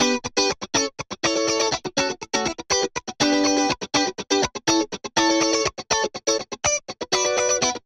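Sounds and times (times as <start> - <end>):
dry guitar: 0.0 - 7.8.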